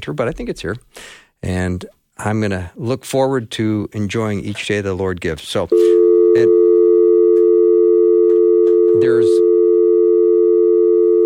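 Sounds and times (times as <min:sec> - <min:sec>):
speech: 0:00.0 - 0:06.6, 0:09.0 - 0:09.4
telephone dial tone through a headset: 0:05.8 - 0:11.2.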